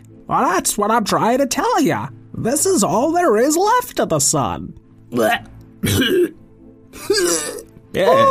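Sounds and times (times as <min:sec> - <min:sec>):
speech: 0:00.3 - 0:06.4, 0:08.0 - 0:08.2
creature coughing up a hairball: 0:05.2 - 0:06.4, 0:07.0 - 0:07.7.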